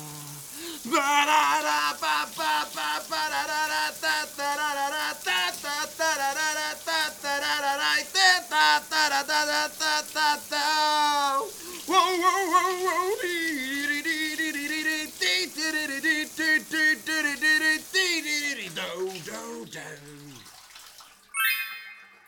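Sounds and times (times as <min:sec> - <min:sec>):
person singing a wordless melody in the shower: 0:00.0 - 0:20.5
steady hiss of running shower water: 0:00.0 - 0:22.0.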